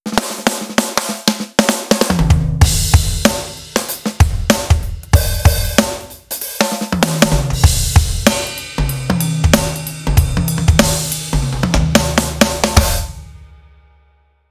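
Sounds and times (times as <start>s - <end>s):
fat funk drum beat: 0.0s - 13.6s.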